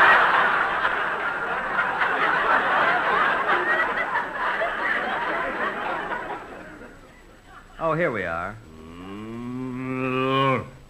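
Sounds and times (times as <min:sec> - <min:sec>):
laughter: 0:00.0 - 0:07.8
speech: 0:07.9 - 0:08.7
cow mooing as someone prepares to milk it: 0:08.7 - 0:10.8.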